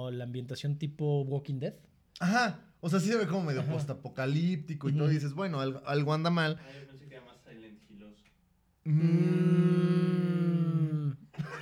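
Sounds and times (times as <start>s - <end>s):
speech: 0.0s - 7.3s, 8.8s - 11.6s
people imitating a cow mooing: 8.8s - 11.3s.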